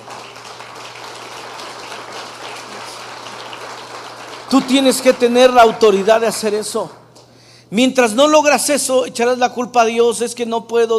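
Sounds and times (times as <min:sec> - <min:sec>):
crowd applauding loudly: 0:00.0 - 0:07.1
speech: 0:04.5 - 0:07.0, 0:07.7 - 0:10.9.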